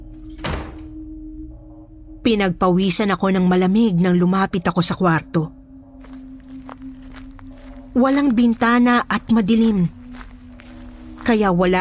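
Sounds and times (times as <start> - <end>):
door pushed shut with a solid thud: 0.3 - 1.0
speech: 2.2 - 5.6, 8.0 - 10.0, 11.3 - 11.7.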